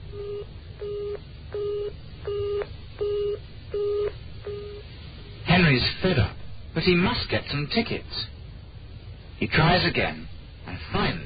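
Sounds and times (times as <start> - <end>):
telephone busy signal after dialing a wrong number: 0.1 - 4.8
speech: 5.8 - 8.4, 9.4 - 11.2.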